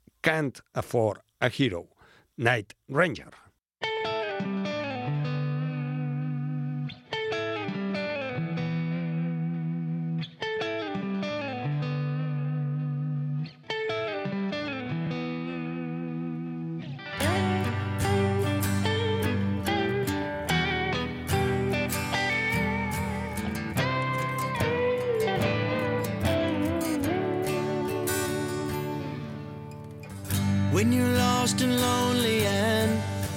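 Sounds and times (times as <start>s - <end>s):
speech: 0.2s - 3.4s
clean effects-laden guitar phrase in a mellow rock intro: 3.8s - 33.3s
full rock band with drums and cymbals: 17.0s - 30.8s.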